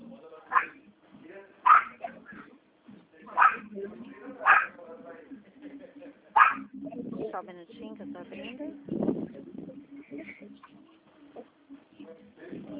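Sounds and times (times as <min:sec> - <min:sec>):
dog barking: 0:00.5 - 0:00.8, 0:01.7 - 0:02.2, 0:03.4 - 0:03.7, 0:04.4 - 0:04.7, 0:06.4 - 0:06.7
speech: 0:07.4 - 0:09.5.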